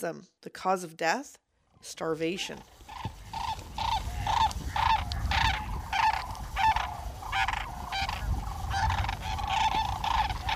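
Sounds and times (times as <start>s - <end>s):
speech: 0.0s - 2.8s
migrating flock of sandhill cranes calling: 2.3s - 10.5s.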